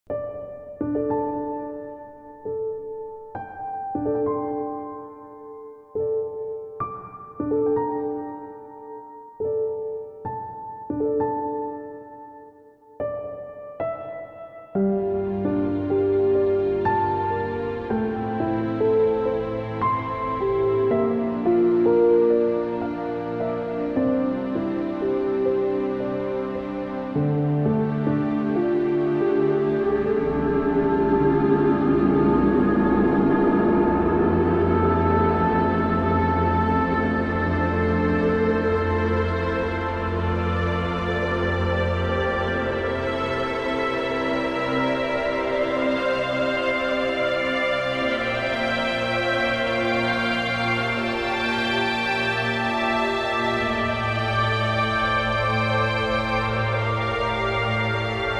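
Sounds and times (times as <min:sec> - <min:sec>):
piano: 0:00.0 - 0:58.3
strings: 0:14.8 - 0:58.3.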